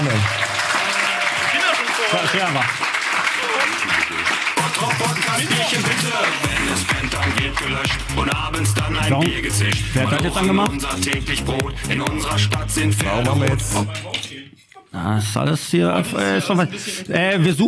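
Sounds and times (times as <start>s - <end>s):
crowd applause: 0.0s - 8.7s
speech: 2.2s - 2.9s, 5.4s - 14.2s, 14.9s - 17.6s
low booming rhythm: 4.6s - 14.0s.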